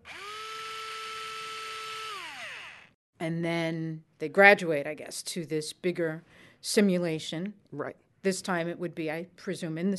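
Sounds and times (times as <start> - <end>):
small battery-powered intraosseous IV drill whirring: 0.0 - 3.0
speech: 3.2 - 9.9.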